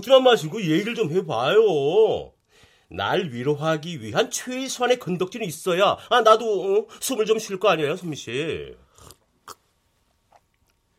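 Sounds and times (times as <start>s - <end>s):
speech: 0.0s - 9.6s
person sipping a drink: 8.8s - 10.9s.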